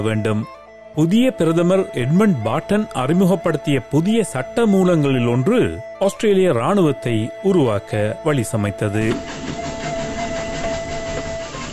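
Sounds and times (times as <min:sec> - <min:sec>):
speech: 0:00.0 - 0:09.7
faint whining tone of a train on tracks: 0:00.0 - 0:11.7
train rolling along rail tracks: 0:09.0 - 0:11.7.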